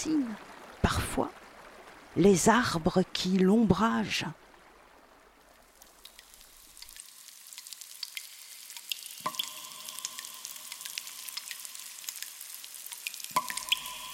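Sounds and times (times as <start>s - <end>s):
speech: 0.0s - 1.4s, 2.1s - 4.4s
water dripping in a cave: 0.0s - 14.1s
drops plinking into a pool in a cave: 5.8s - 7.0s, 7.6s - 14.1s.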